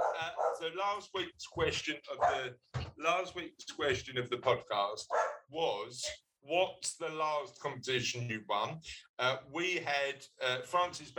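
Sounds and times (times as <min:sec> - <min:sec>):
dog barking and yelping: 0:00.0 - 0:00.6, 0:02.2 - 0:02.5, 0:05.1 - 0:06.2
speech: 0:00.2 - 0:11.1.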